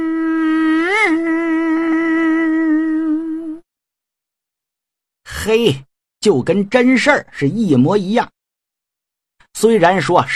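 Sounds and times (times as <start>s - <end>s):
voice imitating a mosquito's whine: 0.0s - 3.6s
speech: 5.5s - 8.4s, 9.6s - 10.3s.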